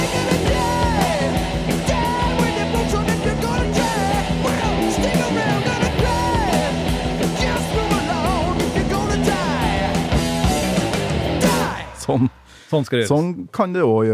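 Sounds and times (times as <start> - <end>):
loud full-band song: 0.0 - 12.4
speech: 12.1 - 14.1.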